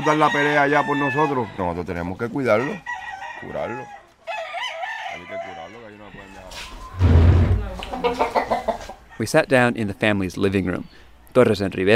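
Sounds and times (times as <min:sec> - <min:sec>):
speech: 0:00.0 - 0:04.0, 0:08.0 - 0:08.6, 0:09.2 - 0:11.9
fighting roosters crowing in a family's backyard: 0:00.0 - 0:09.4
rough farmyard noise: 0:00.0 - 0:11.3
rooster clucking: 0:07.6 - 0:09.1.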